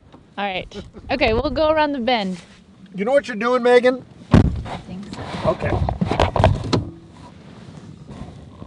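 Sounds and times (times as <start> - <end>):
speech: 0.4 - 4.1, 5.5 - 5.9
Toyota Prius car starting up with mechanical whir and clunk: 6.0 - 7.1.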